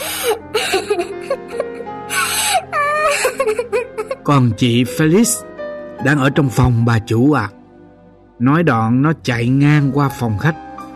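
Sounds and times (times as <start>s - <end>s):
servant boy sobbing in panic: 0.0s - 4.3s
speech: 4.3s - 7.6s, 8.4s - 10.7s.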